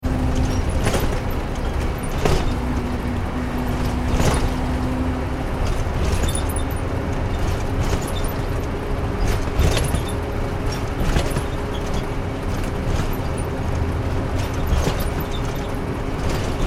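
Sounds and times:
bus driving on freeway recorded inside the bus: 0.0s - 16.6s.

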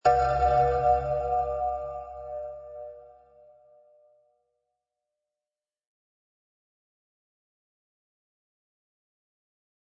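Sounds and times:
creepy gong: 0.0s - 3.4s.

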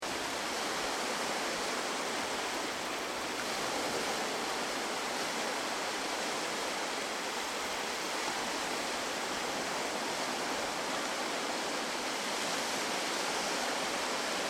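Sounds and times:
rough sea at an ocean beach: 0.0s - 14.4s.

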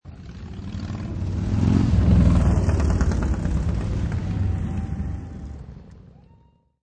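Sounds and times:
motorcycle driving by from right to left: 0.1s - 6.1s.

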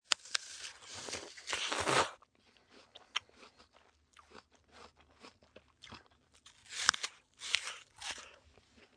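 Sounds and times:
person eating a crunchy apple: 0.0s - 8.9s
human slurping: 0.7s - 2.2s.

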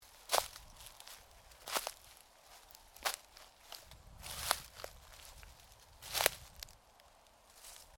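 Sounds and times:
footsteps walking through forest dry undergrowth: 0.0s - 7.9s.

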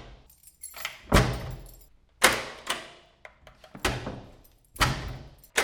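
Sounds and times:
prison security door opening and closing: 0.3s - 2.8s, 3.7s - 5.5s.

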